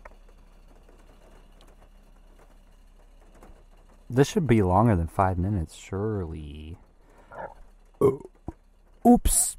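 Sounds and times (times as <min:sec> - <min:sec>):
speech: 0:04.1 - 0:06.8, 0:09.0 - 0:09.5
burp: 0:08.0 - 0:08.6.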